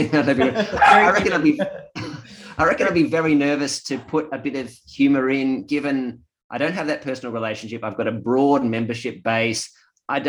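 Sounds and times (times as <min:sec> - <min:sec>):
speech: 0:00.0 - 0:01.9, 0:02.6 - 0:10.2
laughter: 0:00.0 - 0:03.5
human voices: 0:00.0 - 0:10.2
dog barking and yipping: 0:00.6 - 0:01.2.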